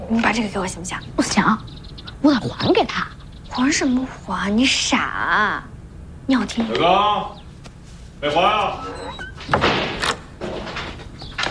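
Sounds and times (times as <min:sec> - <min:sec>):
speech: 0:00.1 - 0:05.7, 0:06.3 - 0:07.4, 0:08.2 - 0:09.2
dull irregular thumps on a door: 0:09.3 - 0:11.4.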